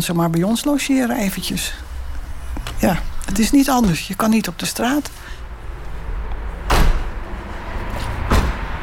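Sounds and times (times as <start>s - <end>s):
speech: 0.0s - 1.9s, 2.8s - 5.4s
door being pushed shut with sharp thuds: 6.6s - 7.2s, 8.2s - 8.7s.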